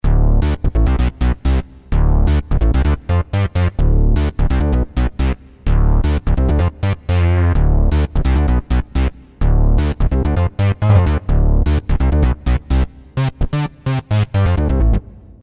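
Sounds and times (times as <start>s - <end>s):
Roland JD800 synth bass: 0.0s - 15.3s.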